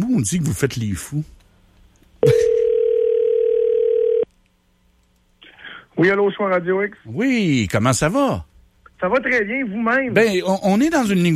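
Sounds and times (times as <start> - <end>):
speech: 0.2 - 1.4, 6.0 - 11.3
telephone dial tone while placing a call: 2.5 - 4.3.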